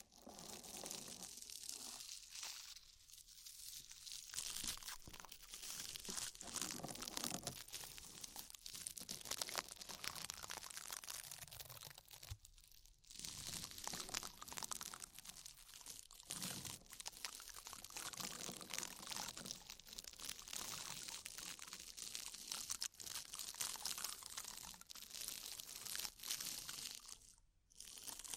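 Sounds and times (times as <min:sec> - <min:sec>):
crackling foam and slick oil rubbing in an ear massage: 0:00.0 - 0:28.3.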